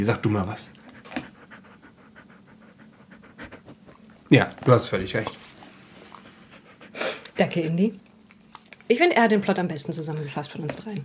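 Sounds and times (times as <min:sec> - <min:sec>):
speech: 0:00.0 - 0:00.8, 0:04.3 - 0:05.4, 0:07.4 - 0:08.0, 0:08.9 - 0:11.0
dog panting: 0:00.2 - 0:07.4.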